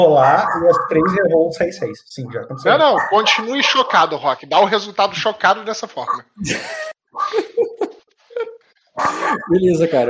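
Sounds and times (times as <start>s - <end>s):
speech: 0.0s - 7.8s, 9.0s - 10.0s
dog barking loudly with sharp yelping barks: 2.8s - 4.0s
laughter: 6.4s - 9.8s.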